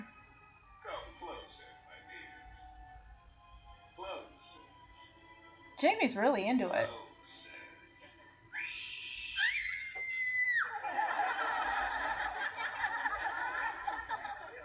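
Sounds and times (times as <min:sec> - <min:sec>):
speech: 0:05.8 - 0:07.0
woman giving a loud high-pitched scream: 0:08.6 - 0:10.7
laughter: 0:10.7 - 0:14.6.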